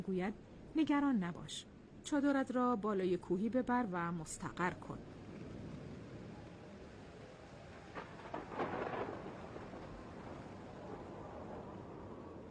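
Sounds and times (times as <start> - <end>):
speech: 0.0 - 5.2
heavy rain in a storm: 5.0 - 12.4
rumbling thunder: 7.7 - 12.4.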